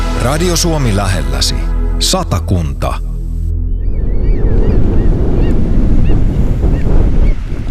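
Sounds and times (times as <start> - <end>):
speech: 0.2 - 3.1
wind buffeting the microphone at a sandy beach: 3.6 - 7.6
surf roaring on a sandy beach: 4.4 - 7.6.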